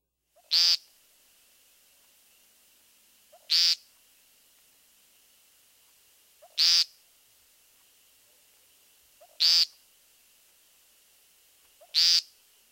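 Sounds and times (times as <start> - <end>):
faint hiss: 0.0 - 12.7
American woodcock repeated nasal peent call: 0.3 - 0.9, 3.3 - 3.9, 6.4 - 7.0, 9.2 - 9.8, 11.7 - 12.4.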